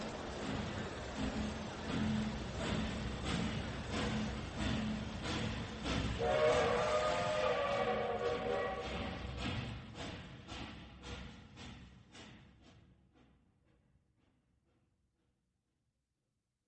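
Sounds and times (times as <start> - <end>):
train rumbling departing from station: 0.0 - 14.3
sustained train whistle: 6.1 - 9.4.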